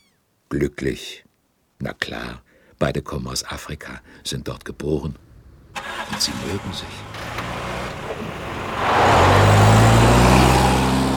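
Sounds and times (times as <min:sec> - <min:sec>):
speech: 0:00.5 - 0:01.2, 0:01.8 - 0:07.3
jeep engine revving and driving away: 0:05.7 - 0:11.1.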